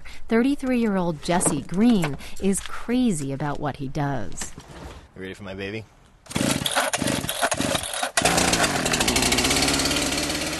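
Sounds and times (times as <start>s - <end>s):
speech: 0.3s - 6.4s
large chainsaw revving: 6.3s - 10.5s.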